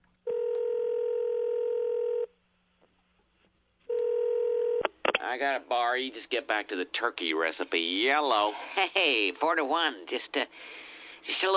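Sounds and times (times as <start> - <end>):
telephone dialing tone steady electronic beep: 0.3 - 2.3, 3.9 - 5.0
speech: 5.3 - 11.5.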